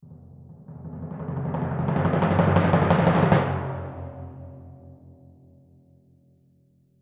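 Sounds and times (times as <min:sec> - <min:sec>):
orchestral timpani roll: 0:00.3 - 0:05.0.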